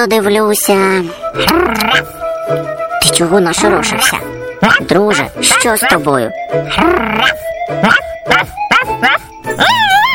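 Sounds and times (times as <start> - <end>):
speech: 0.0 - 10.0
dog barking at thieves: 7.2 - 9.3
dog yelping: 7.2 - 10.1.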